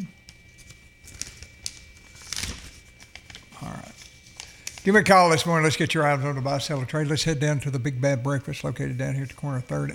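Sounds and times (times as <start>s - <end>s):
piece of paper being handled and crumpled: 0.5s - 7.2s
speech: 4.8s - 9.9s.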